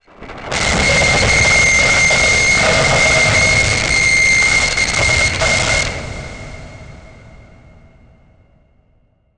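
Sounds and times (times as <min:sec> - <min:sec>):
grinding title transition production element: 0:00.3 - 0:07.7.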